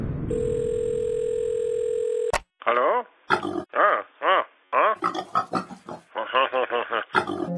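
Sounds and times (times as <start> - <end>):
telephone dial tone while placing a phone call: 0.3 - 2.3
voice imitating a pig with snorting grunts and squeals: 2.7 - 7.5.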